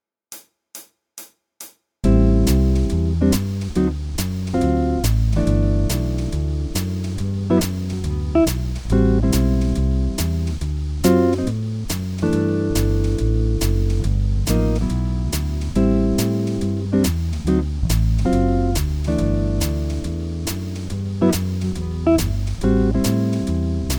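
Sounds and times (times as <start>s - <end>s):
walking bass: 2.0s - 23.9s.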